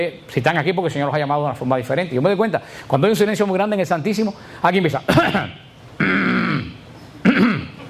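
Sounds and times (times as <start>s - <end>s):
speech: 0.0s - 6.2s
person imitating a cough: 5.1s - 7.8s
person imitating throat clearing: 5.1s - 7.8s.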